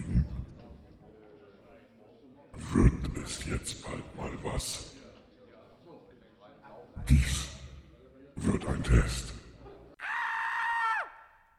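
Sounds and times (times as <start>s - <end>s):
brief murmur of noise: 0.0s - 10.0s
speech: 2.8s - 5.0s, 8.6s - 9.3s
loud sustained high-pitched scream: 10.0s - 11.4s.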